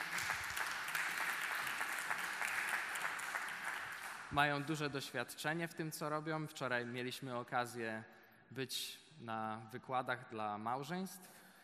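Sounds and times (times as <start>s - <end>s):
audience applause welcoming guests at a gathering: 0.0s - 4.3s
speech: 4.3s - 11.4s.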